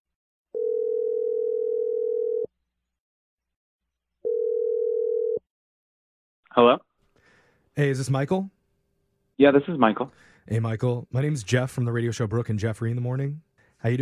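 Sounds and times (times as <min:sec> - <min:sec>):
long steady telephone tones: 0:00.6 - 0:02.5, 0:04.2 - 0:05.4
speech: 0:06.6 - 0:06.9, 0:07.8 - 0:08.6, 0:09.4 - 0:14.0.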